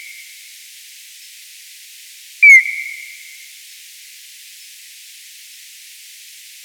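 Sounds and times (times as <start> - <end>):
E isabellinus calling: 2.4 - 2.8.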